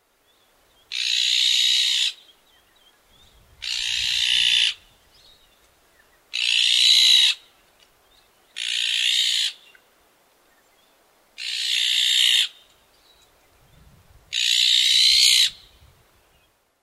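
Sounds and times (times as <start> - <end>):
Iberian magpie calling: 0.9 - 2.3, 3.6 - 4.9, 6.3 - 7.5, 8.6 - 9.8, 11.4 - 12.6, 14.3 - 15.7.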